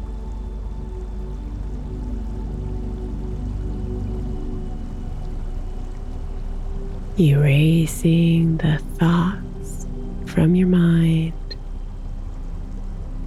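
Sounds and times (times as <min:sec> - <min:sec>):
flowing trickling water: 0:00.0 - 0:13.2
speech: 0:07.2 - 0:09.4, 0:10.4 - 0:11.4.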